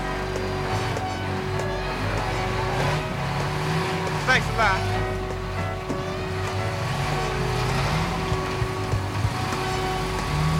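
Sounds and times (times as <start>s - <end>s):
New York City street traffic: 0.0s - 10.5s
large bus engine running on a bus bound for New York City: 0.0s - 10.5s
speech: 4.4s - 5.0s.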